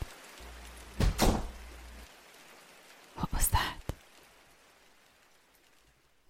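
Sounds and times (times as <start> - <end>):
faint steady hiss: 0.0 - 6.2
bathroom door swinging shut: 1.0 - 1.6.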